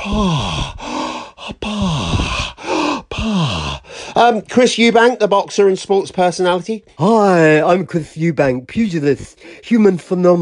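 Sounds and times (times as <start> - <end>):
speech: 0.0 - 0.8, 4.2 - 10.4
voice imitating a runner panting in a posh manner: 0.0 - 4.1.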